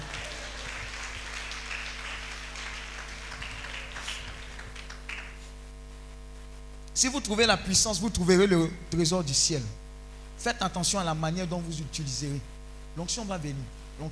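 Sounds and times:
church congregation clapping during a service: 0:00.0 - 0:05.6
speech: 0:07.0 - 0:09.8, 0:10.4 - 0:14.1.

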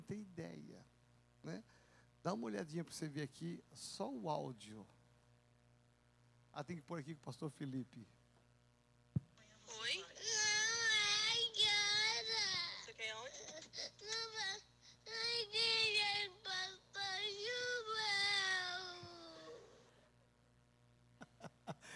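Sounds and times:
speech: 0:00.1 - 0:05.0, 0:06.6 - 0:08.2
young boy wailing desperately in long high strained cries: 0:10.2 - 0:12.8, 0:13.4 - 0:19.8.

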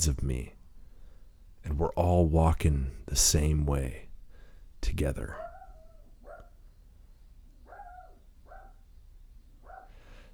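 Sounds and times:
speech: 0:00.0 - 0:00.6, 0:01.7 - 0:04.0, 0:04.8 - 0:05.5
dog barking: 0:05.3 - 0:06.6, 0:07.6 - 0:08.9, 0:09.6 - 0:10.2.

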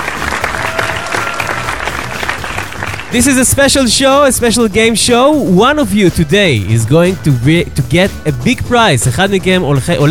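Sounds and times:
audience applause at a game show in a summer camp pavilion: 0:00.0 - 0:03.2
speech: 0:03.1 - 0:10.0.

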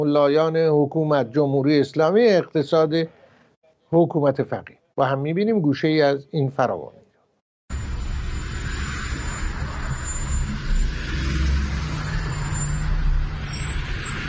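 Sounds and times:
speech: 0:00.0 - 0:03.2, 0:03.9 - 0:07.0
heavy road traffic roar on a boulevard: 0:07.7 - 0:14.2.

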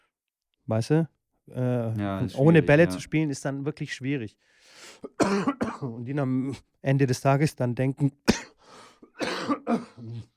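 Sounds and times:
speech: 0:00.7 - 0:08.4, 0:09.7 - 0:10.3
person coughing: 0:05.0 - 0:06.0, 0:08.3 - 0:10.3.

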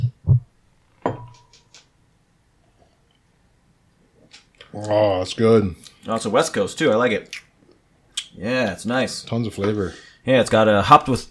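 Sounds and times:
beer glasses clinking in a toast: 0:01.1 - 0:01.6
speech: 0:04.7 - 0:07.4, 0:08.4 - 0:11.2.

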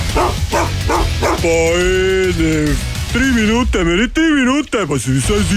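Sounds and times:
angry Belgian shepherd barking loudly: 0:00.1 - 0:01.4
speech: 0:01.4 - 0:05.5.

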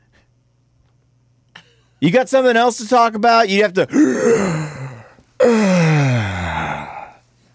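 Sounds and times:
speech: 0:02.0 - 0:04.8
exaggerated yawn breathed into microphone: 0:03.9 - 0:07.2.

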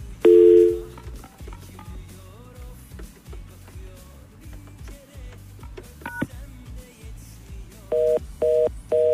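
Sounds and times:
low rhythmic hum: 0:00.0 - 0:09.1
loud phone tone: 0:00.2 - 0:00.9, 0:07.9 - 0:09.1
phone dialing beeps: 0:00.3 - 0:00.9, 0:07.9 - 0:09.1.

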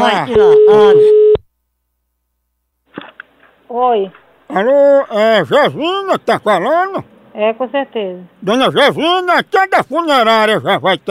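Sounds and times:
speech: 0:00.0 - 0:01.2, 0:03.7 - 0:11.0
telephone ringback tone on an outgoing call from a funeral service: 0:00.4 - 0:01.4.

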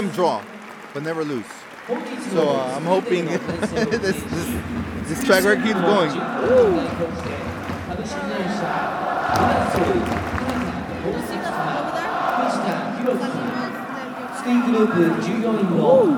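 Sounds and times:
speech: 0:00.0 - 0:10.3, 0:14.4 - 0:16.1
laughter: 0:03.1 - 0:14.6
large crowd of football supporters chanting in Spanish: 0:03.2 - 0:16.1.

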